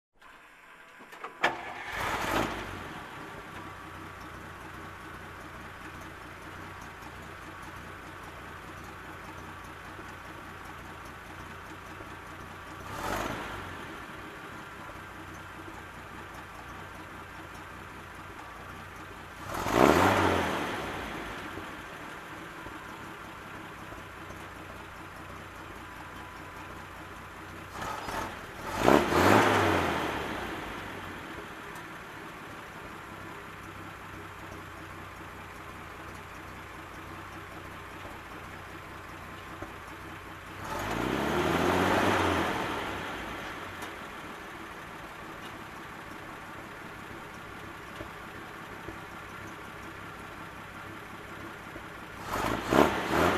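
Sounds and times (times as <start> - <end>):
military truck engine revving: 1.6 - 3.1, 12.8 - 14.0, 19.4 - 21.8, 27.7 - 31.2, 40.6 - 44.2, 52.2 - 53.3.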